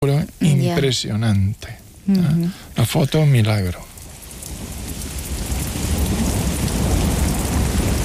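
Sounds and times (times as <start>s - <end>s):
dense rain hissing down in a thunderstorm: 0.0s - 8.0s
speech: 0.1s - 3.9s
deep continuous rumble of thunder: 3.3s - 8.0s.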